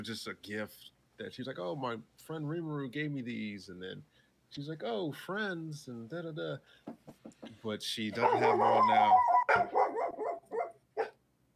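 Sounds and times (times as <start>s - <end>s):
speech: 0.0s - 10.0s
dog barking: 8.2s - 11.2s.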